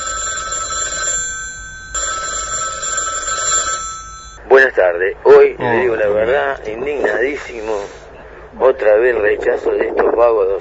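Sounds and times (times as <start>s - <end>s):
telephone ringing with a bright electronic trill: 0.0s - 4.4s
speech: 4.6s - 10.5s.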